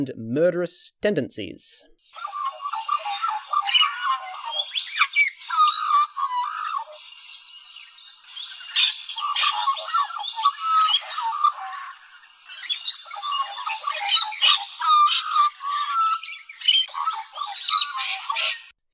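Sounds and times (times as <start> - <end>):
speech: 0.0 - 2.2
Australian magpie warbling: 2.2 - 7.0, 8.7 - 18.7.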